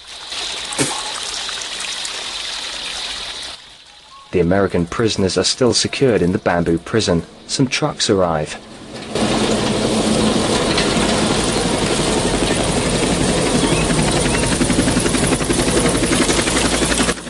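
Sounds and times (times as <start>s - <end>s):
speech: 4.3s - 8.7s
helicopter hovering over a tree canopy and landing at a camp: 5.3s - 17.2s.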